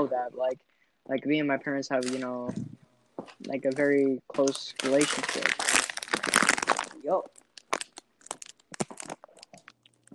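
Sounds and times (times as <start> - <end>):
speech: 0.0 - 2.8, 3.4 - 6.4, 7.0 - 7.4
bag of hot Cheetos crinkling: 3.7 - 10.1
hot Cheetos crunching: 4.4 - 10.1.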